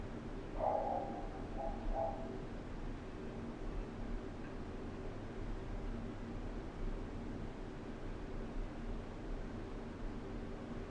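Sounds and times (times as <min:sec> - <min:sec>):
building-wide ventilation system rushing with airy hiss: 0:00.0 - 0:10.8
low mechanical hum of ventilation: 0:00.0 - 0:10.8
dog barking muffled through building ventilation: 0:00.6 - 0:02.4.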